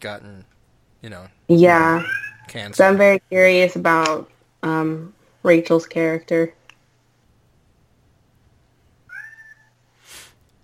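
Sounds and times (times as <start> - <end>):
speech: 0.0 - 6.6
cat meowing: 2.0 - 2.6, 9.1 - 9.7
soft breathy burst: 9.9 - 10.4.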